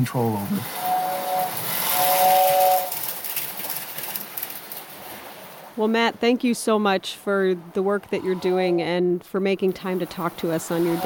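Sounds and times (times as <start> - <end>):
speech: 0.0 - 0.9, 5.8 - 11.0
toy train set steam whistle: 0.6 - 3.2, 10.4 - 11.0.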